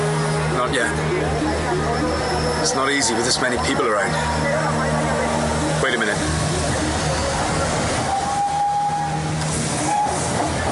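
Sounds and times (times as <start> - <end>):
train rumbling and hissing: 0.0 - 10.7
speech: 0.6 - 5.0
thin high whistle-like tone: 8.0 - 10.2.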